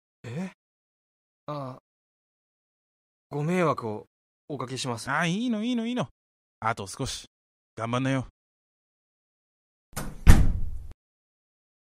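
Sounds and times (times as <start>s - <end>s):
speech: 1.5s - 1.8s, 3.3s - 8.4s
door forcefully slammed shut: 10.0s - 11.0s.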